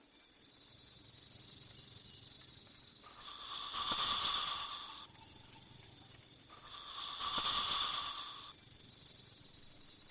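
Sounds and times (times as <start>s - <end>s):
steady high insect-like chirring: 0.1s - 10.0s
snake hissing: 3.1s - 5.8s, 6.5s - 8.7s.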